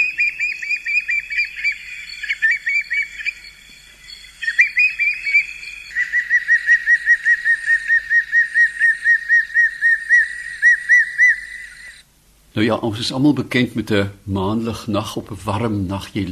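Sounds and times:
spotted thick-knee calling with shrill piping whistles: 0.0s - 12.0s
speech: 12.6s - 16.2s.

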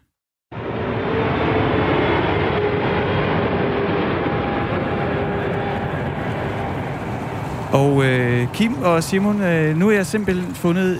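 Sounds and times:
airplane flying to Cyprus engine roar: 0.5s - 10.9s
speech: 7.8s - 10.9s.

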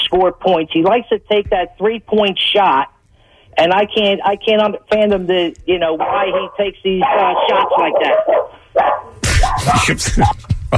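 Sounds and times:
speech: 0.1s - 2.9s, 3.5s - 9.0s, 9.6s - 10.7s
dogs barking: 6.0s - 9.9s.

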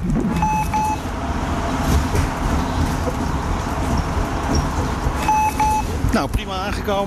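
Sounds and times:
low engine rumble inside a moving city bus: 0.0s - 7.0s
road noise inside a moving bus: 0.0s - 7.0s
short electronic beeps: 0.3s - 1.0s, 5.2s - 5.9s
speech: 6.2s - 7.0s.

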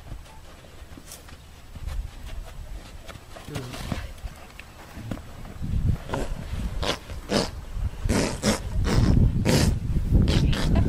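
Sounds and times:
horse farting: 6.0s - 10.8s.

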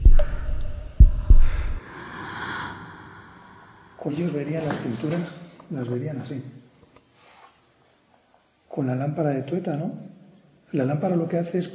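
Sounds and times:
heavy heartbeat thumping: 0.0s - 1.8s
soft airy breath: 0.0s - 5.1s, 7.1s - 7.7s
low hum: 0.0s - 6.0s
speech: 4.0s - 6.6s, 8.8s - 10.1s, 10.7s - 11.7s.

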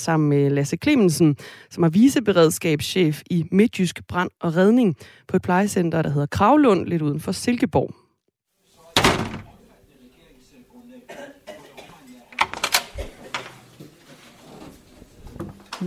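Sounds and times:
speech: 0.0s - 8.0s
heavy automatic fire door swinging shut: 9.0s - 9.6s.

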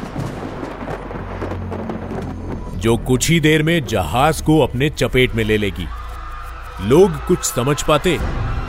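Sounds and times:
rain in a thunderstorm: 0.0s - 2.7s
deep low thunder rumbling: 0.0s - 5.1s
speech: 2.8s - 6.0s, 6.8s - 8.6s.

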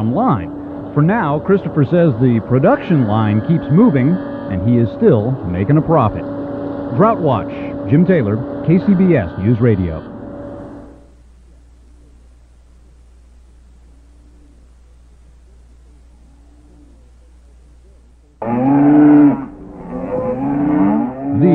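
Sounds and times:
low hum: 0.0s - 21.5s
speech: 0.2s - 6.3s, 6.9s - 10.1s
thirsty cattle mooing during a drought: 18.4s - 21.5s.

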